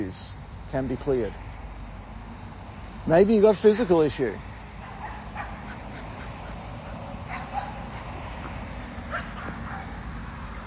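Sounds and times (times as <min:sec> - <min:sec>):
speech: 0:00.1 - 0:01.5, 0:03.1 - 0:04.5
dog being walked outdoors barking and yipping: 0:04.8 - 0:08.2, 0:09.1 - 0:10.0.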